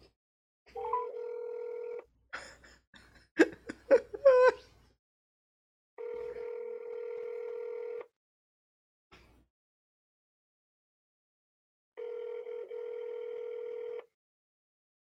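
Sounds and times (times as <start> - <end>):
phone call ringing tone: 0.8 - 2.0, 6.0 - 8.1, 12.0 - 14.1
giggling laughter: 2.4 - 4.7.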